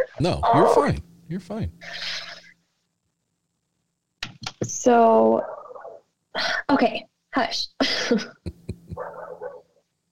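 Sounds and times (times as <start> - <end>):
speech: 0.1 - 2.3, 4.8 - 5.6, 6.4 - 8.6
laughter: 8.0 - 9.0
neighbor's dog barking: 8.9 - 9.7.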